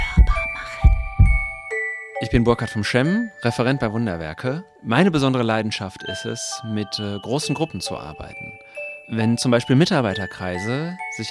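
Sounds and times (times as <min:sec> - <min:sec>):
deep heartbeat thumps: 0:00.0 - 0:01.6
sustained shimmering chime tones: 0:00.0 - 0:04.0, 0:06.0 - 0:11.2
speech: 0:02.3 - 0:11.2.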